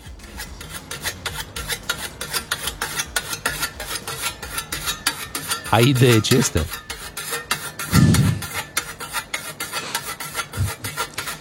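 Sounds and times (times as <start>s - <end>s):
scythe blade being sharpened with a whetstone: 0.2s - 11.3s
speech: 5.7s - 6.8s.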